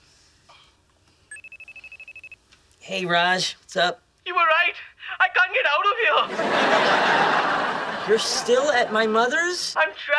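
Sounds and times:
telephone ringing with an electronic trill: 1.3s - 2.4s
speech: 2.9s - 10.1s
laughter: 6.2s - 9.2s.

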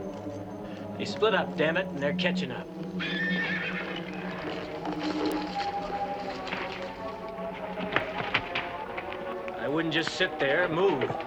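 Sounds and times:
busy outdoor noise: 0.0s - 11.2s
horse hooves galloping away: 0.0s - 11.2s
speech: 1.0s - 3.6s, 9.8s - 11.2s
horse whinnying: 3.0s - 4.3s.

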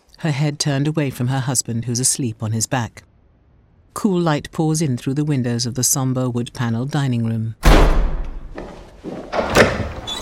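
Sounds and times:
speech: 0.2s - 3.1s, 4.0s - 8.1s
bedroom door being opened with soft knocks and low thuds: 7.6s - 10.2s.

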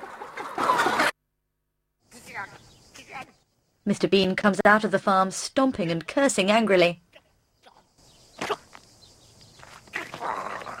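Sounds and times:
thousands of chickens clucking in a vast room: 0.0s - 1.1s
speech: 3.9s - 7.0s.

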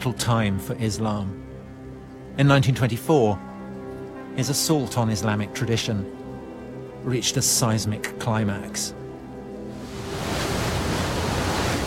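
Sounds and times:
speech: 0.0s - 1.5s, 2.4s - 3.5s, 4.4s - 6.2s, 7.0s - 9.0s
water churning past a moving boat: 9.7s - 11.8s
wind noise: 9.8s - 11.8s.

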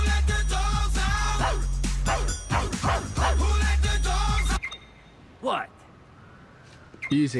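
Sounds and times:
chanted vocals in a pop song: 0.0s - 4.6s
loud bass-heavy pop song on a car stereo: 0.0s - 4.6s
dog barks over the beat of a pop song: 1.4s - 3.6s
speech: 7.1s - 7.3s.

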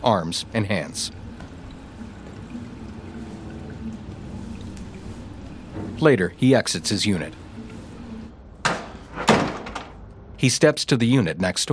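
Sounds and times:
speech: 0.0s - 1.2s, 6.0s - 7.4s, 10.4s - 11.7s
water running at a motel bathroom sink as a man washes his face: 0.3s - 8.3s.

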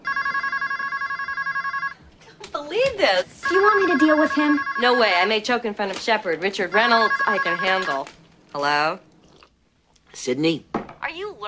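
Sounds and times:
electronic telephone ringing in an apartment: 0.0s - 2.1s, 3.4s - 5.4s, 6.7s - 8.1s
faint room noise: 0.0s - 11.4s
speech: 2.7s - 9.1s, 10.2s - 11.4s.

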